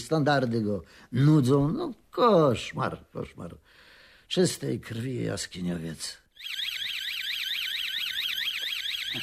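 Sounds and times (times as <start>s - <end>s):
speech: 0.1s - 6.7s
car alarm wailing: 6.4s - 9.2s.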